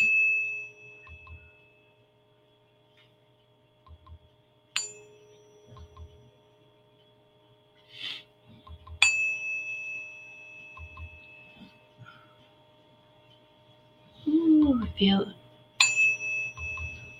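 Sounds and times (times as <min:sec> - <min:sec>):
432 Hz tuning fork struck and ringing: 0:00.0 - 0:02.8, 0:04.6 - 0:07.3, 0:08.8 - 0:12.6, 0:15.6 - 0:17.1
person speaking softly: 0:14.2 - 0:15.4
speech: 0:15.0 - 0:15.4.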